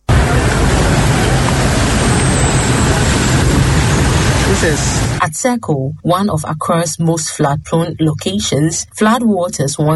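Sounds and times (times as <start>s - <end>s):
dense road traffic with trucks and buses in Accra: 0.0s - 5.2s
speech: 4.6s - 9.9s.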